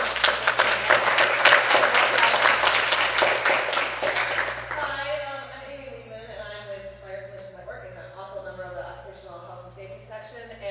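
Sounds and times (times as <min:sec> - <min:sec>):
audience applause at an occupational health and safety meeting: 0:00.0 - 0:04.8.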